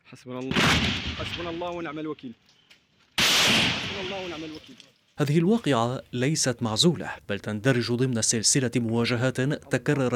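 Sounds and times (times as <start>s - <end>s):
speech: 0.1s - 2.5s, 4.0s - 10.1s
gunfire: 0.5s - 1.8s, 3.2s - 4.7s.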